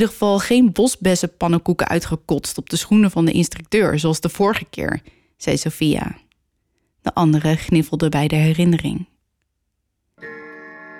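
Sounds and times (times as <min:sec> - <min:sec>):
speech: 0:00.0 - 0:06.2, 0:07.0 - 0:09.1
old grandfather clock striking: 0:10.2 - 0:10.9.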